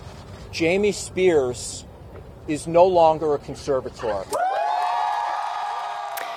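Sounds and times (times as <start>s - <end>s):
speech: 0.5s - 4.4s
crowd of fans cheering and whooping outside a courthouse: 4.3s - 6.3s.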